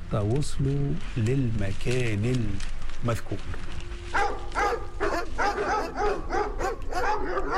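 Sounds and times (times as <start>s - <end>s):
speech: 0.1s - 4.2s
police dogs barking during a cave search: 4.1s - 7.5s.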